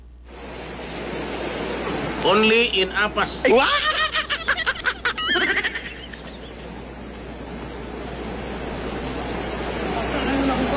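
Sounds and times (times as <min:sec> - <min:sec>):
sea waves: 0:00.3 - 0:10.7
speech: 0:02.2 - 0:04.0
laughter: 0:03.4 - 0:07.0.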